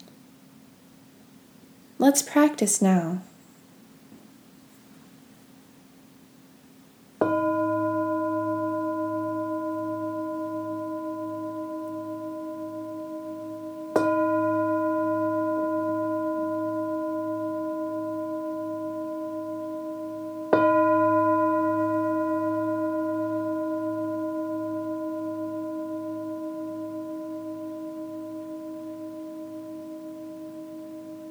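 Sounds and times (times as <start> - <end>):
speech: 2.0 - 3.3
singing bowl struck and ringing: 7.2 - 31.2.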